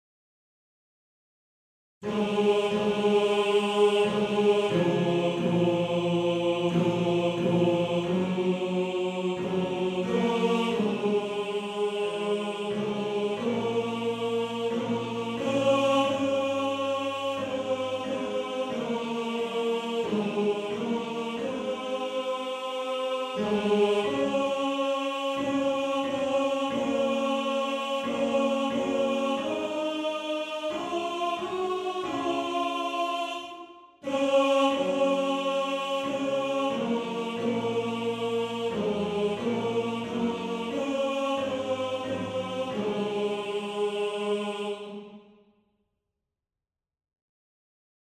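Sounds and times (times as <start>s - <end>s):
second tenor section of a male choir singing: 2.0s - 45.3s.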